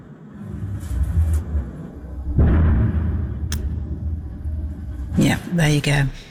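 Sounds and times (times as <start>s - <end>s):
constant low drone: 0.0s - 6.2s
heavy missile strike explosion: 1.6s - 5.3s
speech: 5.2s - 6.2s.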